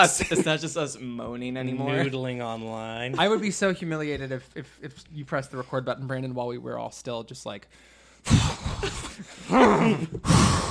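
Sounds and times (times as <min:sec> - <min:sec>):
speech: 0:00.0 - 0:10.7
people imitating a guttural animal growl: 0:08.3 - 0:10.7.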